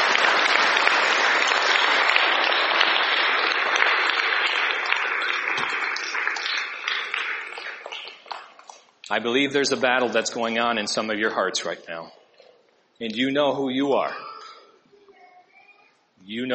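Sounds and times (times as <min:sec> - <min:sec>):
large audience applause: 0:00.0 - 0:08.8
speech: 0:09.2 - 0:12.2, 0:13.0 - 0:14.3, 0:16.3 - 0:16.5.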